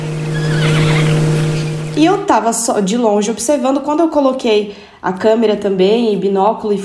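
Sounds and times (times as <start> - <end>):
steady low hum: 0.0 - 3.0
jay mimicking a horse's neigh: 0.3 - 1.2
speech: 2.0 - 6.8.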